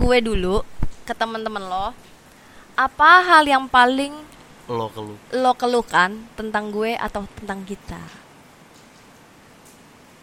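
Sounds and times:
speech: 0:00.0 - 0:02.2, 0:02.8 - 0:08.2
soft steady hiss of light drizzle: 0:00.0 - 0:10.2.

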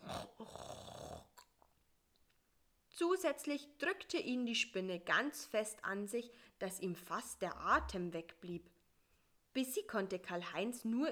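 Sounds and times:
loud rasping snore: 0:00.0 - 0:01.4
speech: 0:03.0 - 0:08.8, 0:09.6 - 0:11.1.

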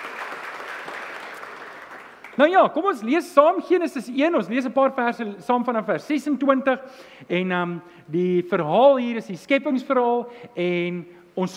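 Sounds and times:
crowd applauding: 0:00.0 - 0:02.6
speech: 0:02.4 - 0:11.5.

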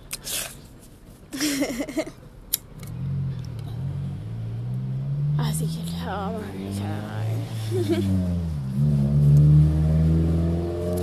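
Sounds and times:
speech: 0:01.4 - 0:02.2, 0:05.4 - 0:10.0
car engine revving loudly: 0:02.7 - 0:11.0
laughter: 0:07.6 - 0:08.2.

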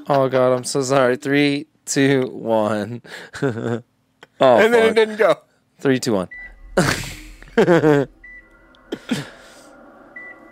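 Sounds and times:
speech: 0:00.0 - 0:08.2, 0:08.9 - 0:09.4
short high-pitched electronic beeps for syncing audio: 0:06.3 - 0:08.9, 0:10.1 - 0:10.5.

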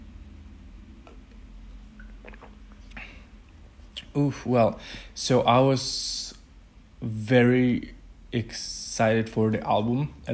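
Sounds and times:
steady low hum: 0:00.0 - 0:10.3
person sipping wine: 0:01.9 - 0:04.1
mouth clicks and swallows: 0:02.0 - 0:04.1
speech: 0:04.2 - 0:06.2, 0:07.0 - 0:10.3.

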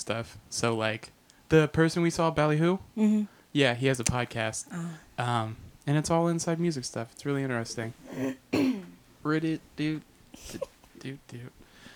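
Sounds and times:
speech: 0:00.0 - 0:11.6
coughs: 0:08.1 - 0:09.0
throat clearing: 0:08.1 - 0:09.0.

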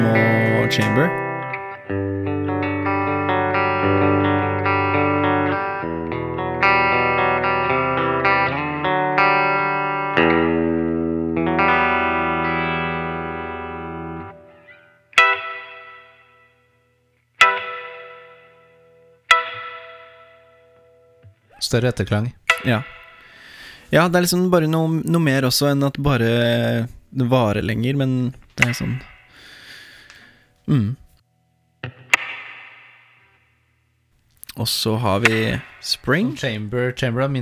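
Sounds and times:
distorted electric guitar chords through a hall reverb effect: 0:00.0 - 0:21.5, 0:22.4 - 0:23.8, 0:28.6 - 0:30.8, 0:31.8 - 0:33.8, 0:35.2 - 0:36.5
speech: 0:00.7 - 0:01.2, 0:01.9 - 0:02.2, 0:21.7 - 0:23.0, 0:23.9 - 0:29.1, 0:30.7 - 0:31.0, 0:34.6 - 0:37.4.

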